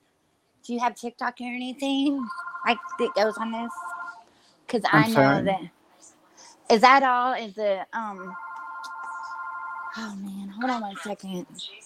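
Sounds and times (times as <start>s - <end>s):
speech: 0.7s - 3.9s, 4.7s - 5.8s, 6.7s - 8.4s, 10.0s - 11.8s
phone ringing with a steady electronic tone: 2.2s - 4.2s, 8.2s - 10.2s.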